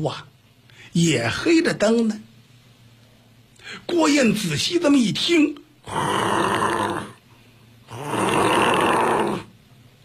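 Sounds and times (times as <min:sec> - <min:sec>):
speech: 0:00.0 - 0:00.3, 0:00.9 - 0:02.3, 0:03.7 - 0:06.8
sleeping man snoring loudly: 0:05.8 - 0:07.2, 0:07.9 - 0:09.5.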